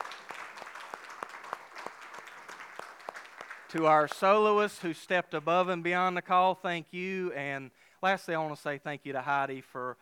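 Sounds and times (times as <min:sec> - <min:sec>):
church audience applauding a choir: 0:00.0 - 0:04.4
speech: 0:03.7 - 0:10.0.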